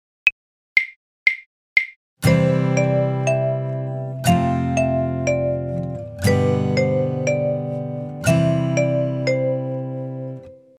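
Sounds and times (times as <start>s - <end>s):
chord and melody: 2.2s - 10.7s.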